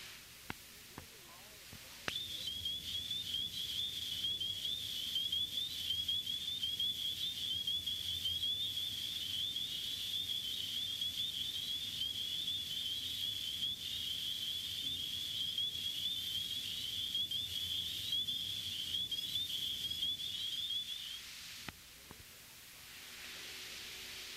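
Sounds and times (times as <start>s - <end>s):
soft hiss of noise: 0.0s - 24.3s
spring peeper frog Hyla crucifer calling with rising whistles: 2.1s - 21.3s.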